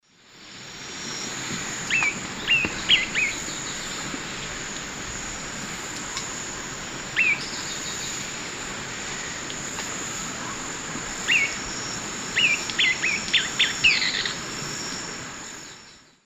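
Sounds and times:
Stigmatura napensis call and song in South American eastern lowlands: 1.9s - 4.1s, 7.2s - 8.2s, 11.2s - 11.6s, 12.3s - 16.2s.

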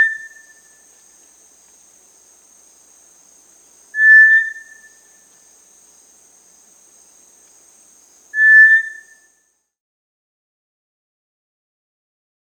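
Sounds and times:
Cinereous Tinamou Crypturellus cinereus whistle call in Peru: 4.0s - 5.0s, 8.4s - 9.2s.

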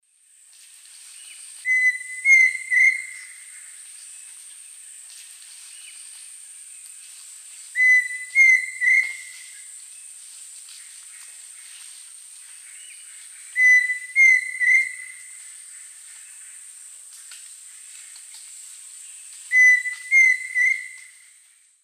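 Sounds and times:
Dromococcyx phasianellus singing in South American Eastern Lowlands: 1.7s - 3.3s, 7.8s - 9.4s, 13.6s - 15.2s, 19.5s - 21.2s.

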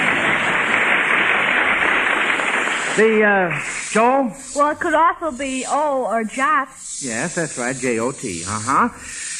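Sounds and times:
studio audience applause: 0.0s - 4.2s
speech: 3.0s - 9.3s.

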